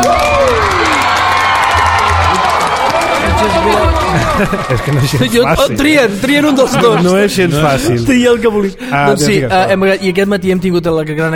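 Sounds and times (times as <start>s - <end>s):
whoops and excited voices: 0.0s - 5.6s
small group applauding and cheering for a new book: 0.0s - 6.2s
laughter: 2.3s - 8.2s
speech: 4.4s - 11.3s.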